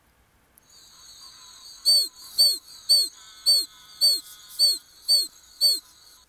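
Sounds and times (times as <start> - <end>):
faint steady hum of insects: 0.6 - 6.2
oak toad Anaxyrus quercicus peeping: 1.7 - 5.9.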